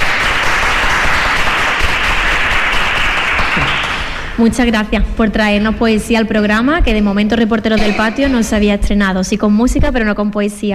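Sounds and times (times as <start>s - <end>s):
crowd applauding: 0.0s - 4.4s
speech: 4.4s - 10.7s.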